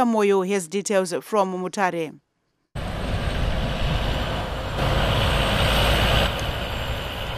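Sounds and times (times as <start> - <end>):
speech: 0.0 - 2.2
heavy haulage trucks on untarred detour roads in Mutare Zimbabwe: 2.8 - 7.3.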